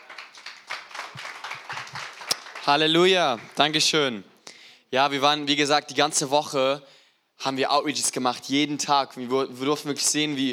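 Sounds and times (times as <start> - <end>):
audience applause for a guest at a Christian gathering: 0.0 - 3.8
speech: 2.6 - 4.3, 4.9 - 10.5.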